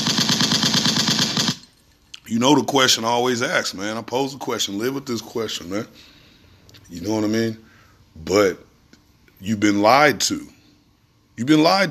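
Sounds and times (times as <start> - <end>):
rapid burst of automatic gunfire: 0.0 - 1.7
speech: 2.3 - 6.1, 6.9 - 8.7, 9.4 - 10.6, 11.4 - 11.8.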